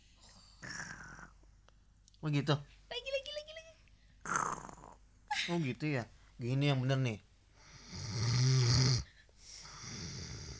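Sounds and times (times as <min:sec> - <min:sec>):
child imitating a father snoring: 0:00.6 - 0:01.4, 0:04.2 - 0:05.0, 0:07.9 - 0:09.1
speech: 0:02.2 - 0:02.7, 0:05.5 - 0:07.3.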